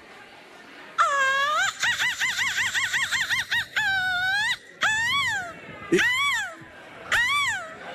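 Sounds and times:
woman imitating a seagull screech: 0:01.0 - 0:07.8.

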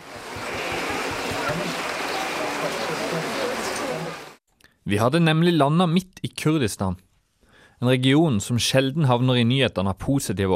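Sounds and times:
rain falling: 0:00.0 - 0:04.4
speech: 0:04.9 - 0:07.1, 0:07.8 - 0:10.5.

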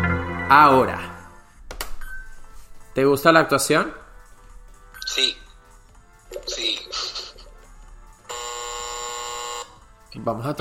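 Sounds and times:
speech: 0:00.5 - 0:01.1, 0:03.0 - 0:04.0, 0:05.0 - 0:05.4, 0:06.3 - 0:07.1, 0:10.2 - 0:10.5
mixed noise: 0:06.3 - 0:07.5
game buzzer marking a lie in a lie detector game: 0:08.3 - 0:09.8.

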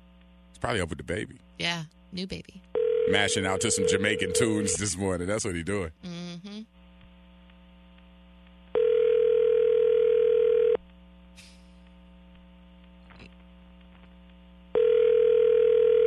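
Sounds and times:
constant low electrical hum: 0:00.0 - 0:16.0
speech: 0:00.6 - 0:06.1
ringback tone on an outgoing phone call: 0:02.8 - 0:04.8, 0:08.8 - 0:10.8, 0:14.8 - 0:16.0.

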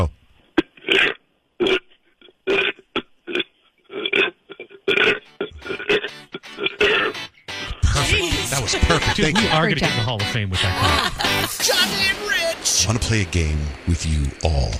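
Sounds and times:
man burping on command: 0:00.6 - 0:07.2
laughter: 0:07.8 - 0:13.0
speech: 0:09.2 - 0:14.7.

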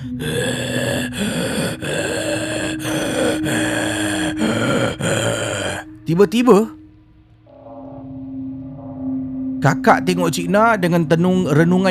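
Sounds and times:
voice imitating heavy rasping trance breathing of a woman: 0:00.0 - 0:06.0
speech: 0:00.2 - 0:01.4, 0:06.1 - 0:06.8, 0:09.6 - 0:11.8.

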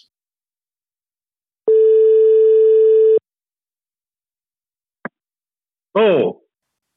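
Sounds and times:
telephone ringback tone on outgoing call: 0:01.7 - 0:03.2
speech: 0:06.0 - 0:06.4.

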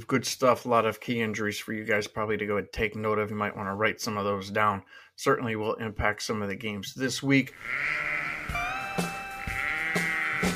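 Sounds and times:
speech: 0:00.0 - 0:08.2
sheep bleating in a segment intro jingle: 0:07.5 - 0:10.5
steady tonal backing of an intro jingle: 0:08.3 - 0:10.5.

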